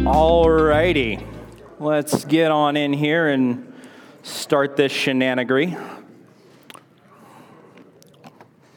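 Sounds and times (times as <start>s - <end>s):
speech: 0.1s - 6.0s
chewing a breath mint with crunches and wet mouth sounds: 6.5s - 8.7s.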